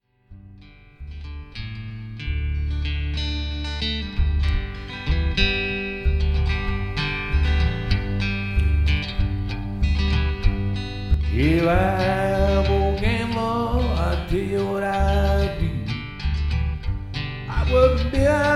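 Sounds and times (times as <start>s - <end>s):
music jam: 1.0s - 18.5s.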